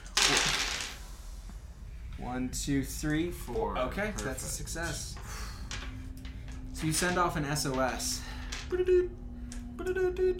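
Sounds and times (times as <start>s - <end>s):
orange dice clattering across a tabletop: 0.0s - 1.0s
speech: 2.3s - 5.3s, 6.8s - 9.2s, 9.8s - 10.3s.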